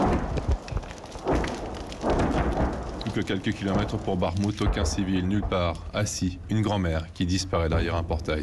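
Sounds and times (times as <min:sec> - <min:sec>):
artillery fire: 0:00.0 - 0:05.9
burning house crackling: 0:00.0 - 0:08.4
speech: 0:03.2 - 0:08.4.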